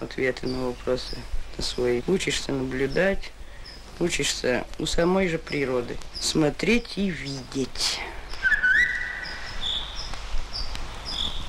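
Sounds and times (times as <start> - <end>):
speech: 0.0 - 3.4, 4.0 - 8.2
Eurasian golden oriole fluted whistle song in a forest after summer rain: 8.4 - 9.9
faint thin high bird notes: 8.4 - 10.0.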